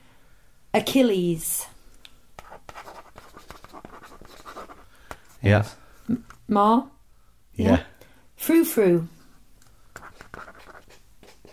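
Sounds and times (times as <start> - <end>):
speech: 0.7 - 1.7, 5.4 - 7.0, 7.6 - 9.2
handwriting on a writing surface: 2.4 - 4.8, 9.9 - 11.5.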